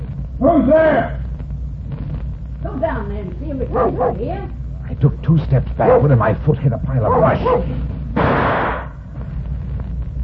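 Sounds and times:
low rumble: 0:00.0 - 0:10.2
speech: 0:00.4 - 0:01.2, 0:02.7 - 0:08.3
gunshot: 0:08.2 - 0:09.0.

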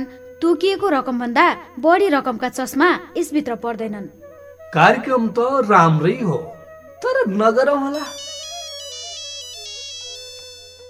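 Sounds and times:
speech: 0:00.0 - 0:08.3
phone ringing with an electronic melodic ringtone: 0:07.9 - 0:10.8.

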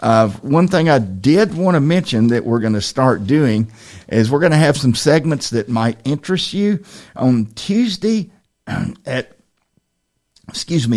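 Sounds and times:
speech: 0:00.0 - 0:09.4, 0:10.5 - 0:10.9
throat clearing: 0:08.7 - 0:09.1.

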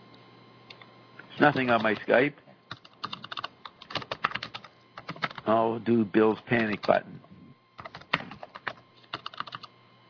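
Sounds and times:
speech: 0:01.4 - 0:02.4, 0:05.5 - 0:07.3
typing on a computer keyboard: 0:01.5 - 0:02.1, 0:02.7 - 0:05.4, 0:06.6 - 0:07.0, 0:07.8 - 0:10.0.

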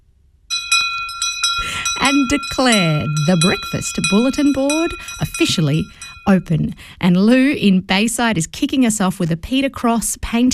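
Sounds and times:
small bell ringing: 0:00.5 - 0:06.7
speech: 0:02.1 - 0:10.5.

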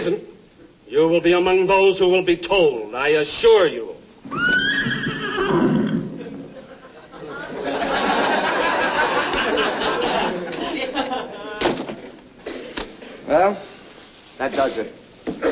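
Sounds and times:
speech: 0:00.9 - 0:03.9, 0:14.5 - 0:15.5
horse whinnying in a general's bedroom on a military post: 0:04.2 - 0:06.6
horse snorting: 0:04.8 - 0:06.5
laughter: 0:06.2 - 0:11.8.

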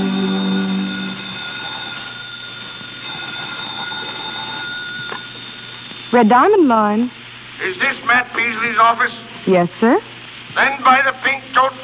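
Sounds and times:
buzzy telephone ringing at a desk in an office: 0:00.0 - 0:06.5
steady faint hum and hiss: 0:00.0 - 0:11.8
speech: 0:06.1 - 0:11.8.

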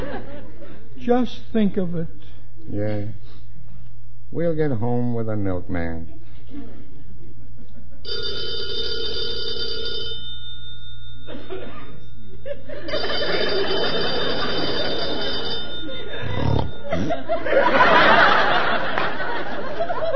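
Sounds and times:
laughter: 0:00.0 - 0:00.9, 0:06.1 - 0:08.2, 0:11.3 - 0:20.1
speech: 0:01.0 - 0:03.4, 0:04.3 - 0:06.9, 0:08.0 - 0:08.5, 0:17.0 - 0:18.3
old-fashioned telephone bell ringing: 0:08.1 - 0:17.0.

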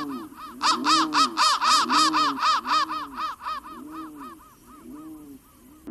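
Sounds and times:
crow cawing: 0:00.0 - 0:05.8.

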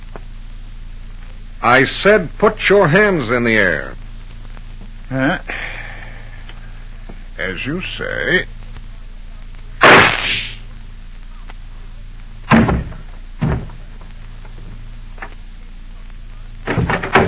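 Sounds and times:
speech: 0:01.6 - 0:04.0, 0:05.1 - 0:05.8, 0:07.4 - 0:08.6
gunshot from a small flat-handled gun: 0:09.8 - 0:10.6
soft knocks and thuds: 0:12.5 - 0:15.4.

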